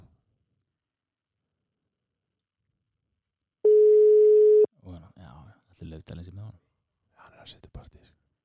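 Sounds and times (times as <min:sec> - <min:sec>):
telephone line beeps while placing a call: 0:03.7 - 0:04.7
speech: 0:05.7 - 0:06.7, 0:07.3 - 0:08.3.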